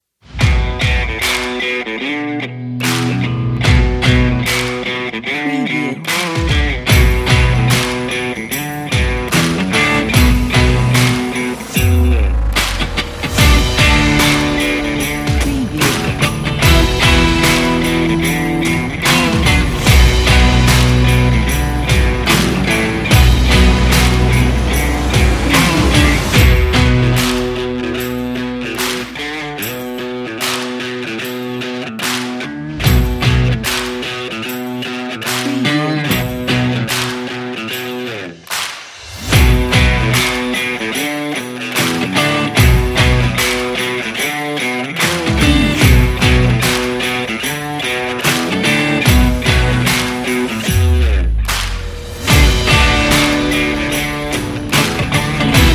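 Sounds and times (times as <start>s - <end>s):
cool rock music: 0.3s - 55.7s.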